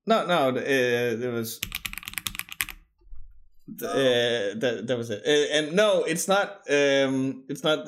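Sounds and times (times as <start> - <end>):
speech: 0.1 - 1.8, 3.7 - 7.8
clacky keystrokes on a new custom-made mechanical keyboard: 1.6 - 2.8.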